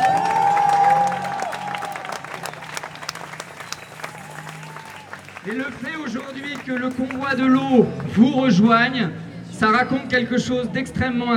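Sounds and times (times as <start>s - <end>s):
crowd applause at an open-mic gathering: 0.0s - 8.1s
speech: 5.4s - 11.3s.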